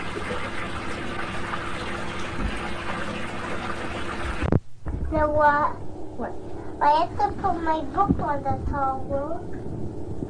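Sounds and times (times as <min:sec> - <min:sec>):
hot water gushing from a tap into a filling bathtub: 0:00.0 - 0:04.6
speech: 0:05.1 - 0:09.7.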